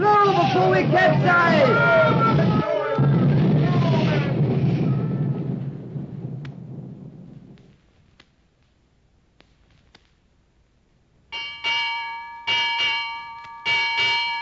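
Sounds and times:
heavy rumbling roar: 0.0s - 7.6s
speech: 0.8s - 1.4s
ship's bell ringing: 11.3s - 14.4s.

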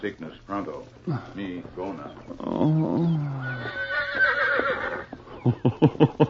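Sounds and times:
speech: 0.0s - 4.4s, 5.4s - 6.2s
horse neighing loudly with snorting bursts: 2.3s - 5.2s
laughter: 5.3s - 6.2s.

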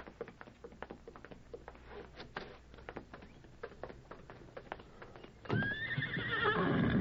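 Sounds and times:
hooves clopping on hard ground in a patio: 0.0s - 6.9s
horse whinnying: 5.5s - 6.9s.

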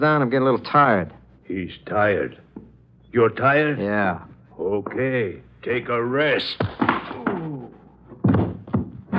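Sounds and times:
speech: 0.0s - 6.8s
pistol barrel striking a man's head with dull thunks: 8.2s - 9.0s.

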